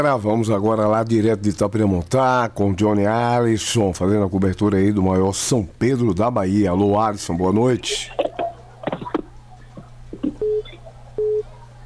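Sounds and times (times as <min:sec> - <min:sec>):
speech: 0:00.0 - 0:08.2
clicks and handling noise on the phone line: 0:07.4 - 0:11.8
phone busy tone after a dropped phone call: 0:10.2 - 0:11.5.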